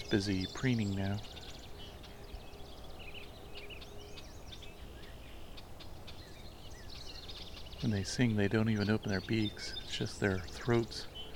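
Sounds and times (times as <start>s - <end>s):
low outdoor rumble: 0.0s - 11.3s
red-winged blackbird flock chattering: 0.0s - 11.3s
speech: 0.1s - 1.4s, 7.8s - 11.1s.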